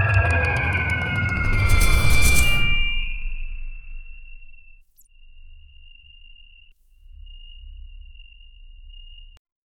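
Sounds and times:
dark magic spell: 0:00.1 - 0:04.6.

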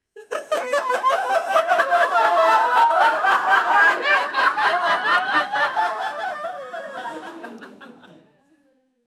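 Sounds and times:
group laughing: 0:00.2 - 0:08.4.

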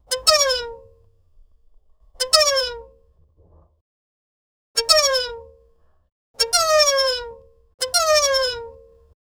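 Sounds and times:
slow squeaky toy: 0:00.0 - 0:01.0, 0:02.1 - 0:03.0, 0:04.8 - 0:05.4, 0:06.4 - 0:08.8.

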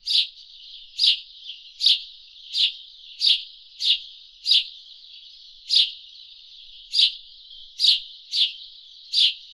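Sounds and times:
sparrow: 0:00.0 - 0:09.5.

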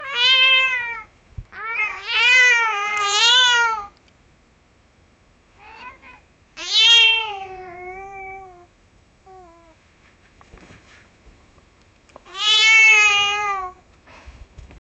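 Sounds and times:
cat calling her kittens: 0:00.0 - 0:04.0, 0:05.6 - 0:08.7, 0:12.3 - 0:13.8.

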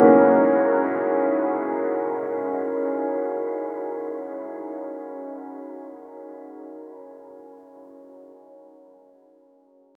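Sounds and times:
sparse piano notes echoing with long reverb tails: 0:00.0 - 0:06.8.

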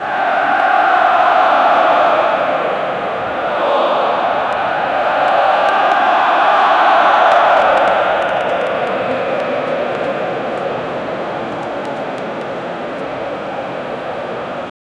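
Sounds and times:
soccer stadium crowd: 0:00.0 - 0:14.7.

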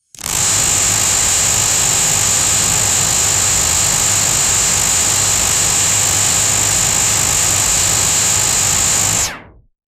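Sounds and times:
futuristic laser gun firing rapidly: 0:00.2 - 0:09.5.

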